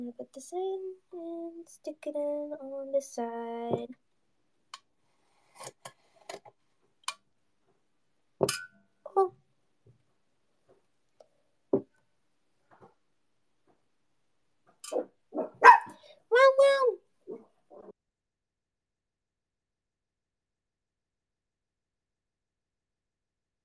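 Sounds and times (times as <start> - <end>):
speech: 0.0 - 4.0, 5.6 - 6.5, 8.4 - 9.4, 14.9 - 15.1
dogs barking: 15.4 - 16.0.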